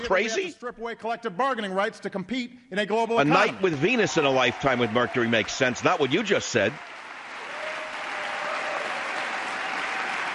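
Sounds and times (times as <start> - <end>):
speech: 0.0 - 7.0
large crowd applauding: 3.2 - 10.3.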